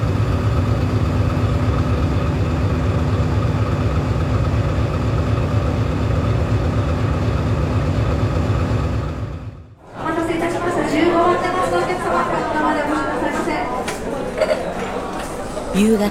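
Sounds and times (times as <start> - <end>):
massive diesel engine of a 6,700-ton ship thundering in the engine room: 0.0 - 9.8
laughter: 9.8 - 16.0.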